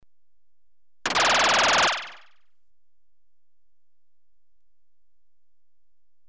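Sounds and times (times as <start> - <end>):
electronically generated machine gun rhythm in rapid short bursts: 1.1 - 2.3.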